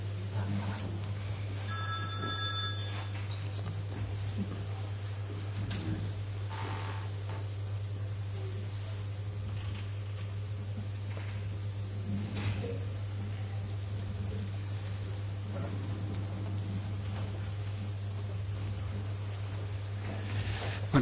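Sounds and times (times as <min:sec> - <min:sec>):
steady low hum: 0:00.0 - 0:21.0
mobile phone ringing: 0:01.6 - 0:03.4.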